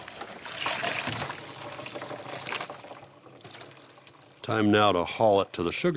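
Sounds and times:
maple sap pouring from a collection bucket: 0.0s - 4.5s
speech: 4.5s - 5.9s.

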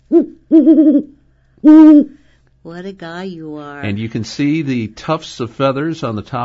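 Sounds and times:
great horned owl hooting: 0.0s - 2.2s
speech: 0.1s - 6.4s.

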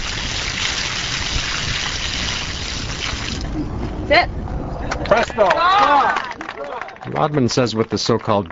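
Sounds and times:
bucket of water poured onto brick pavement: 0.0s - 3.5s
speech: 4.1s - 4.4s, 5.0s - 8.4s.

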